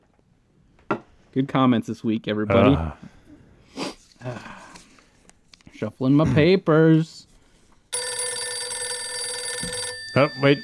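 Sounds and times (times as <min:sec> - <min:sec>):
speech: 0:01.3 - 0:03.1, 0:05.8 - 0:07.3, 0:10.2 - 0:10.6
telephone with bright electronic ring: 0:07.9 - 0:10.6.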